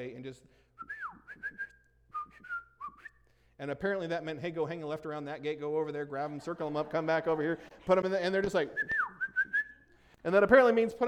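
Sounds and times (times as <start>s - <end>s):
speech: 0.0s - 1.6s, 3.6s - 9.2s, 10.2s - 11.0s
whistling imitating a shepherd's command to a sheepdog: 0.8s - 3.3s, 8.7s - 10.0s
laughter: 5.9s - 9.1s.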